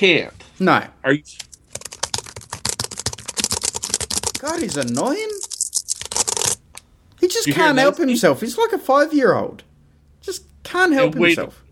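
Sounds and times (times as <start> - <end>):
speech: 0.0 - 1.5, 4.4 - 5.4, 7.2 - 9.7, 10.3 - 11.6
computer keyboard keys being tapped rapidly: 1.3 - 6.7.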